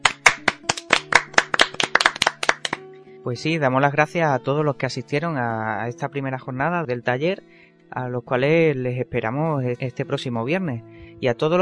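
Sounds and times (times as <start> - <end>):
small group applauding: 0.0 - 2.8
speech: 3.2 - 11.5.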